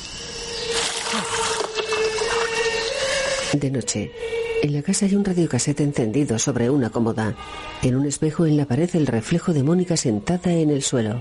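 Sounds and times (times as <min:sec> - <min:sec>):
water splashing as it is poured over hands and a head: 0:00.6 - 0:03.6
speech: 0:03.5 - 0:11.1.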